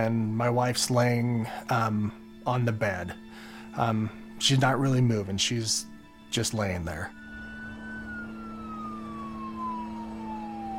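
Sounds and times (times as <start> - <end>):
speech: 0.0 - 7.2
police siren wailing outside: 7.0 - 10.7.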